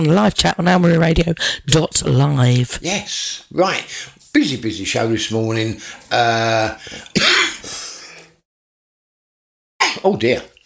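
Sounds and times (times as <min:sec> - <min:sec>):
speech: 0:00.0 - 0:07.5, 0:10.0 - 0:10.5
person groaning: 0:06.1 - 0:07.6
rough throaty coughs: 0:06.8 - 0:08.2, 0:09.8 - 0:10.2.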